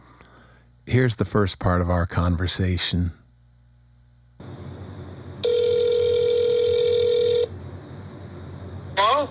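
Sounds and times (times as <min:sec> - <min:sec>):
speech: 0:00.9 - 0:03.2
ringback tone over a phone line: 0:05.4 - 0:07.5.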